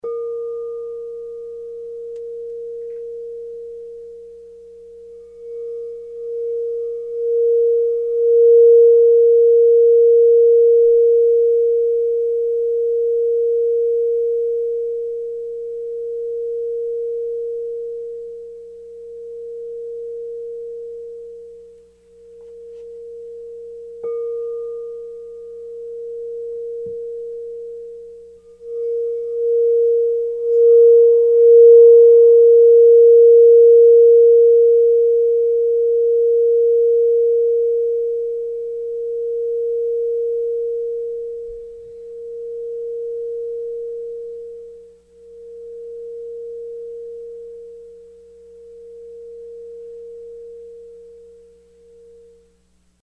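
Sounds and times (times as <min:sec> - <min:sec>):
singing bowls: 0:00.0 - 0:53.0.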